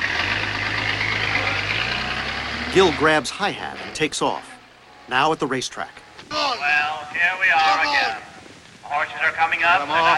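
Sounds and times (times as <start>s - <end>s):
ambulance engine driving away: 0.0s - 5.1s
speech: 2.8s - 8.3s, 8.9s - 10.1s.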